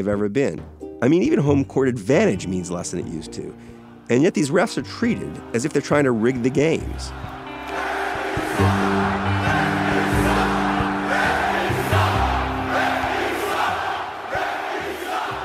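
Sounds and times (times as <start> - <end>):
speech: 0.0 - 7.4
huge arena crowd screaming and booing: 5.0 - 15.4.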